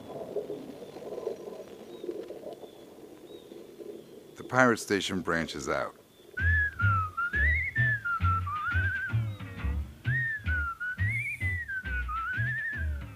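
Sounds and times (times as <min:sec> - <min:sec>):
speech: 0:04.5 - 0:06.0
person whistling a wandering tuneful melody: 0:06.4 - 0:13.1
steady low thumping rhythm: 0:06.4 - 0:13.1.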